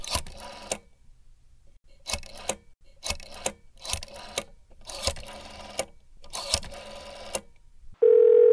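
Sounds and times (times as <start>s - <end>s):
rotary telephone dial clicking off a number: 2.0s - 7.5s.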